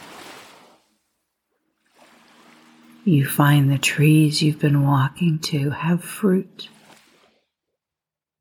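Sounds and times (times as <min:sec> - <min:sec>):
soft ocean waves washing onto a beach: 0:00.0 - 0:01.0, 0:01.8 - 0:04.8, 0:06.2 - 0:07.4
speech: 0:03.0 - 0:06.8.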